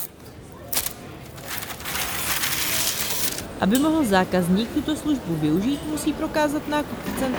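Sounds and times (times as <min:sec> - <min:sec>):
sharp wrapping paper crackle: 0:00.7 - 0:03.5
speech: 0:03.6 - 0:07.3.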